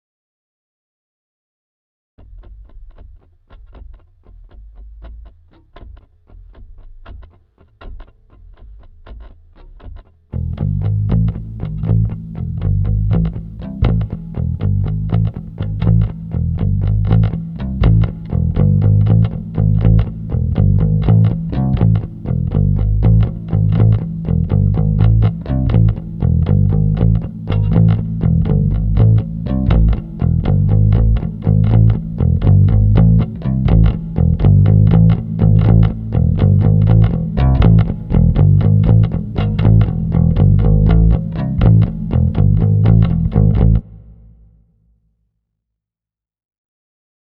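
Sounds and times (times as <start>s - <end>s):
bass line: 10.4s - 44.6s.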